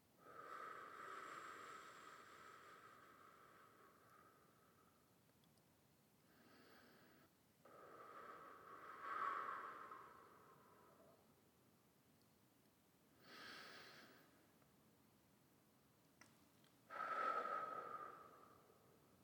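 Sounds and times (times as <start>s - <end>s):
person inhaling and exhaling deeply: 0.2s - 5.0s, 6.3s - 11.3s, 13.2s - 14.4s, 16.9s - 19.2s.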